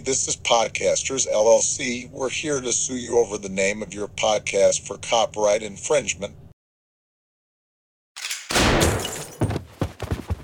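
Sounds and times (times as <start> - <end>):
speech: 0.0 - 6.4
gunshot sound effect volley: 8.2 - 9.5.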